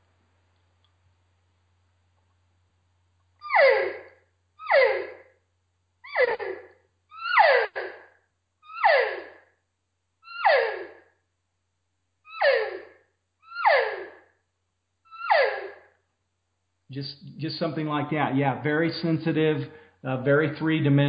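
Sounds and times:
nasal descending elk cow calls blown on a game call: 3.4 - 4.0, 4.6 - 5.2, 6.1 - 8.0, 8.6 - 9.4, 10.2 - 11.0, 12.3 - 14.1, 15.1 - 15.8
speech: 17.0 - 21.0.

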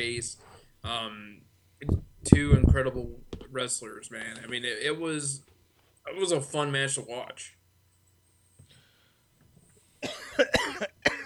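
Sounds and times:
speech: 0.0 - 7.6
harsh coughing fit: 10.0 - 11.2.

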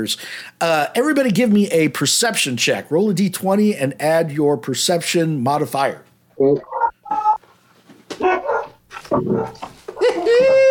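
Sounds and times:
speech: 0.0 - 6.8
wild dog whining: 6.6 - 7.4, 8.2 - 10.6
wild dogs barking and yapping: 8.2 - 10.2.

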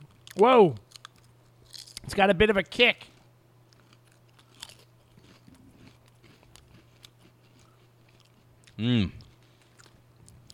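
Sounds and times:
low steady hum: 0.0 - 10.5
person biting and chewing a spicy tangy potato chip: 0.1 - 2.1, 3.7 - 10.5
speech: 0.4 - 0.8, 2.1 - 3.1, 8.8 - 9.2.

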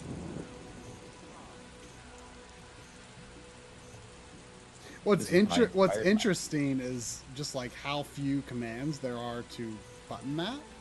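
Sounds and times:
video game thunder rumble: 0.0 - 1.8
video game rain pouring: 0.0 - 10.8
speech: 5.0 - 10.7.

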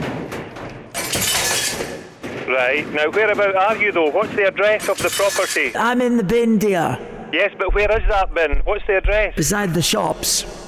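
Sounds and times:
glass panes crashing as they are put in: 0.9 - 2.2, 4.8 - 5.8
speech: 1.1 - 10.6.

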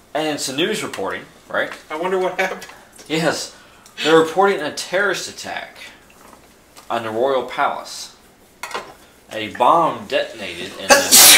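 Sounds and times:
speech: 0.2 - 6.0, 6.9 - 8.1, 9.3 - 11.3
person sneezing: 10.9 - 11.3.

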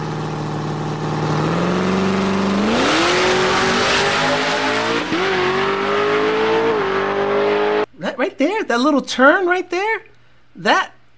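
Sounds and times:
Camaro drag racing car engine roaring at full throttle through gear shifts: 0.0 - 7.9
speech: 8.8 - 10.0, 10.6 - 10.9.

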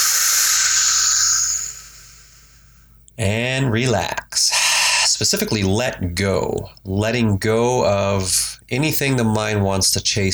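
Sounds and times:
deep breath in and out as a relaxation exercise: 0.0 - 3.0
speech: 3.2 - 4.6, 5.2 - 10.3.

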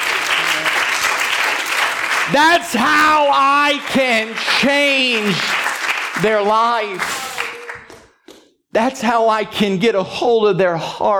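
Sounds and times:
church audience clapping hands: 0.0 - 8.6
speech: 2.3 - 5.6, 6.2 - 7.2, 8.7 - 11.1.

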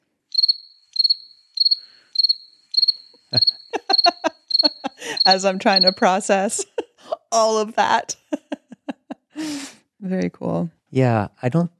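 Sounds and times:
crickets chirping: 0.3 - 6.7
speech: 3.3 - 3.5, 5.3 - 6.7, 7.4 - 8.2, 10.1 - 11.7
laughter: 3.4 - 10.2, 11.0 - 11.6.

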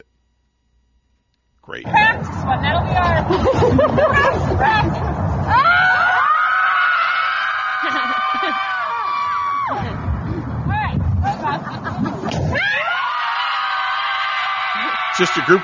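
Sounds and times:
speech: 1.6 - 6.0, 15.2 - 15.6
noisy chatter and laughter: 1.9 - 5.6, 9.7 - 12.6
excited babble and cheers: 2.8 - 10.1, 12.4 - 15.6
crowd of mothers screaming together on a football field: 5.5 - 10.0, 12.5 - 15.6.

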